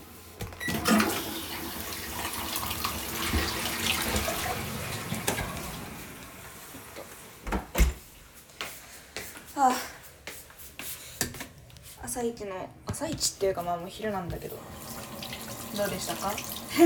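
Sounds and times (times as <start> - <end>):
toilet flushing: 0.6 - 7.9, 14.3 - 16.8
speech: 12.2 - 14.8, 15.8 - 16.8.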